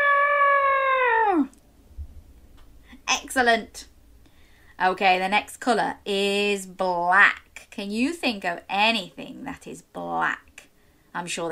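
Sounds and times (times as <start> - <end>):
voice imitating an elephant trumpeting: 0.0 - 1.6
speech: 3.4 - 3.9, 4.8 - 10.5, 11.1 - 11.4.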